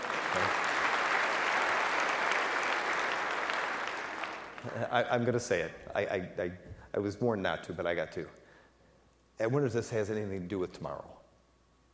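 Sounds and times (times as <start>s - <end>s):
audience applause: 0.0s - 4.9s
speech: 0.4s - 0.6s, 4.6s - 8.4s, 9.4s - 11.2s.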